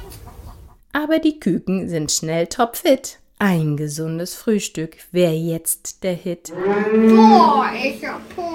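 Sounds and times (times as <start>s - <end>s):
speech: 1.0s - 8.5s
young voice imitating a rooster crow across a farmyard at daybreak: 6.6s - 7.9s.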